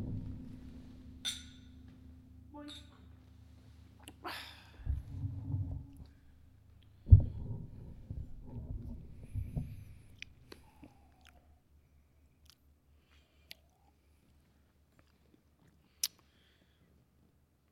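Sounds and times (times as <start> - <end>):
soft bumps and handling noise: 0.0 - 3.1, 4.8 - 10.6
low steady hum: 0.0 - 14.8
glasses clinking in a toast: 1.2 - 1.8.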